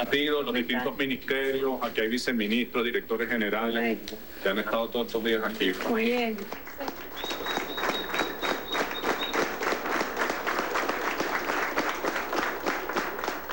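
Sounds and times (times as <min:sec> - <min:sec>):
speech: 0:00.0 - 0:06.7
large crowd applauding: 0:05.7 - 0:13.5
thin steady high whistle: 0:07.1 - 0:09.7.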